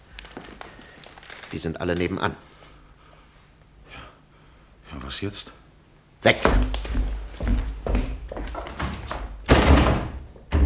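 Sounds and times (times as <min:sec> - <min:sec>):
speech: 0:01.5 - 0:02.5, 0:05.2 - 0:05.6, 0:06.2 - 0:07.6
uneven knocks and thuds on a locked door: 0:07.4 - 0:10.6.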